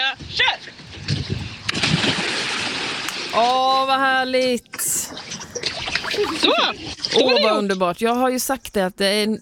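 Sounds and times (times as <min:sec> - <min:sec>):
people wading and splashing into a river: 0:00.6 - 0:03.8, 0:04.7 - 0:07.6
speech: 0:03.4 - 0:05.1, 0:06.2 - 0:09.3.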